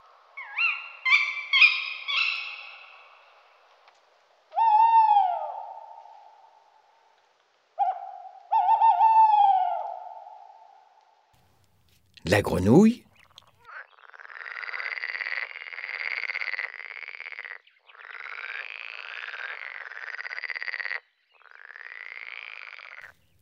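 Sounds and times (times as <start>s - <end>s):
owl hooting: 0.4s - 3.3s, 4.5s - 6.4s, 7.8s - 10.9s
speech: 12.3s - 13.1s.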